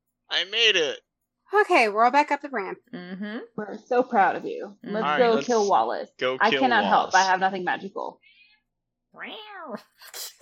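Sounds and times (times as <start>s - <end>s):
speech: 0.3s - 8.3s, 9.2s - 10.4s
cat meowing: 9.2s - 9.8s.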